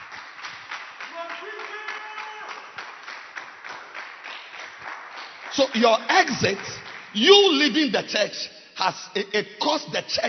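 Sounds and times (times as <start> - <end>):
congregation clapping hands: 0.0 - 7.8
speech: 5.6 - 10.2.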